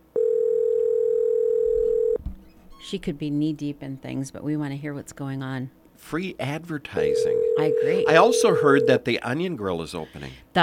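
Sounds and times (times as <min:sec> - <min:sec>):
telephone dial tone while dialing a call: 0:00.2 - 0:02.2, 0:07.0 - 0:09.0
speech: 0:02.9 - 0:10.6.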